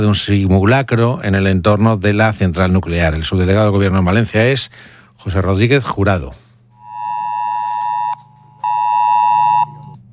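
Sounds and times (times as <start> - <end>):
speech: 0.0 - 6.4
emergency alert tone on mobile phones during a drill near a nuclear power plant: 6.8 - 9.9.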